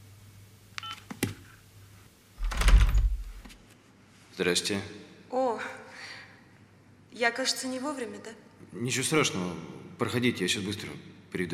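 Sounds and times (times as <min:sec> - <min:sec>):
faint clicks and knocks of an apartment door: 0:02.4 - 0:03.4
speech: 0:04.4 - 0:05.7, 0:07.2 - 0:11.5.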